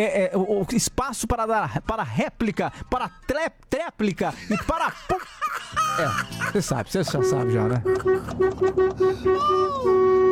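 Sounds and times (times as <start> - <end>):
speech: 0.0 - 10.3
laughter: 4.2 - 8.3
car horn honking: 7.0 - 10.3.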